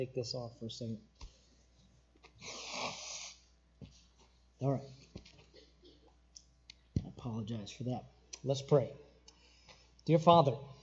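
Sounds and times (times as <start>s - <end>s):
speech: 0.0s - 1.3s, 2.4s - 2.7s, 4.6s - 5.0s, 7.2s - 9.0s, 10.1s - 10.8s
person blowing nose forcefully: 2.4s - 3.5s
sniff: 2.4s - 3.5s.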